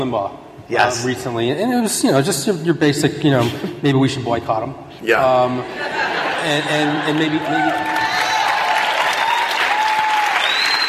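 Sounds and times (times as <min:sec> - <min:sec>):
speech: 0:00.0 - 0:07.9
laughter: 0:05.3 - 0:07.9
audience applause: 0:06.8 - 0:10.8.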